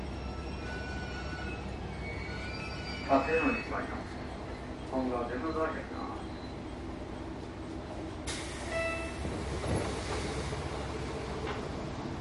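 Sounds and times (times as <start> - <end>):
local train engine rumbling at a station: 0.0 - 12.1
high squealing tones: 0.4 - 6.8
speech: 3.1 - 4.2, 4.9 - 6.4.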